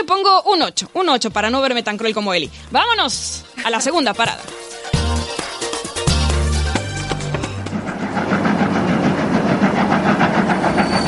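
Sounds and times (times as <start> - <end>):
speech: 0.0 - 4.7
train locomotive moving along: 3.9 - 11.0.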